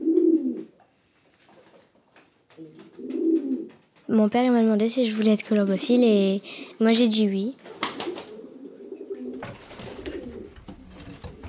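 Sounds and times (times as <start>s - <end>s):
pigeons cooing: 0.0s - 0.8s, 2.6s - 3.8s, 7.7s - 11.4s
speech: 4.1s - 7.8s.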